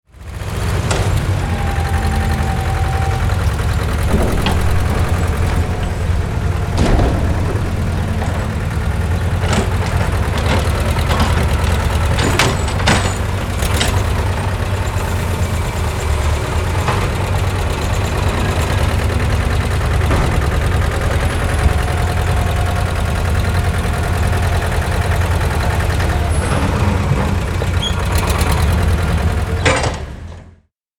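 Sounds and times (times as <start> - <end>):
bulldozer doing demolition: 0.1 - 30.7
demolition debris impacts: 3.9 - 14.8, 17.3 - 28.4.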